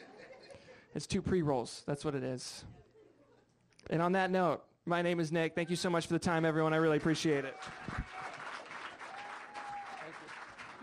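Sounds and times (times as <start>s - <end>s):
speech: 0.9s - 2.8s, 3.9s - 8.0s
live audience applause after comedy set: 6.9s - 10.8s.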